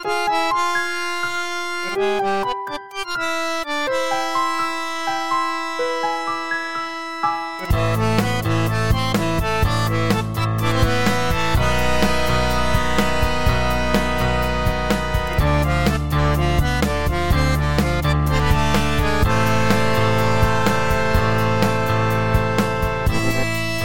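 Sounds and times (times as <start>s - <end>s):
electronic bandoneon: 0.0s - 23.8s.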